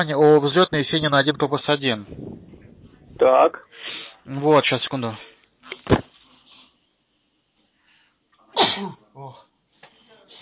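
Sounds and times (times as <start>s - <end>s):
speech: 0.0s - 2.3s, 3.2s - 5.3s, 5.9s - 6.1s, 8.8s - 9.4s
person sneezing loudly during a business phone call: 8.6s - 9.4s.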